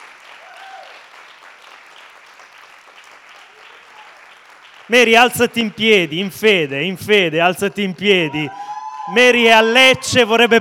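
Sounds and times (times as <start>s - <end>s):
audience applauding at a Sunday gathering: 0.0s - 5.9s
speech: 4.9s - 10.5s.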